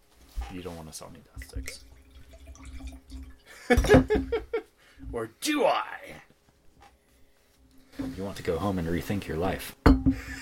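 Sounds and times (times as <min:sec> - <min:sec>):
speech: 0:00.5 - 0:02.0, 0:02.8 - 0:04.5, 0:05.1 - 0:06.3, 0:08.0 - 0:10.4
Riesling wine pouring into a glass: 0:01.4 - 0:03.5.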